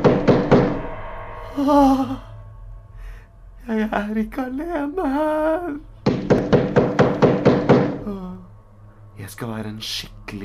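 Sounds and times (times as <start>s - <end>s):
short wavering groan-like vocal sound: 1.5s - 2.3s
speech: 1.6s - 2.3s, 3.7s - 6.4s, 9.2s - 10.4s
heavy dull thuds on a door: 6.0s - 8.0s.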